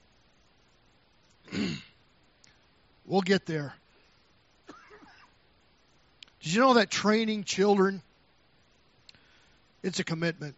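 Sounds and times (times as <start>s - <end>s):
single rough throat clearing: 1.4s - 2.0s, 4.7s - 5.4s
speech: 3.1s - 3.8s, 6.4s - 8.1s, 9.8s - 10.5s.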